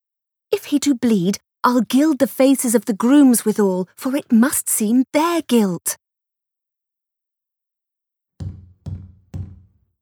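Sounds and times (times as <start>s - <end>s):
speech: 0.7s - 6.0s
heavy knocks on a door: 8.4s - 10.0s.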